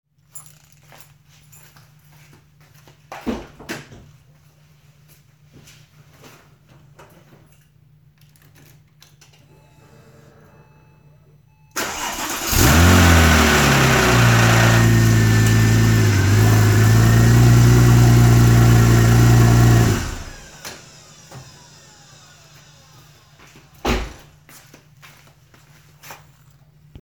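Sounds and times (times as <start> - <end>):
timing chain rattle on Porsche 996 Turbo startup: 0.2 - 1.8
Porsche 996 Turbo engine starting: 11.8 - 23.4.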